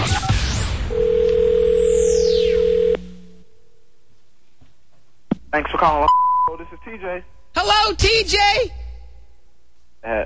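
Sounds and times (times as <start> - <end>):
steady telephone dial tone: 0.9 - 3.2
speech: 5.6 - 8.8, 10.0 - 10.2.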